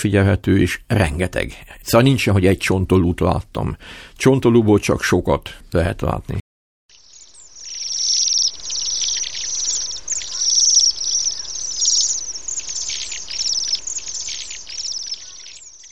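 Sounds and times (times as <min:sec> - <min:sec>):
speech: 0:00.0 - 0:06.4
flock of Bohemian waxwings Bombycilla garrulus giving buzzy trills: 0:06.9 - 0:15.8.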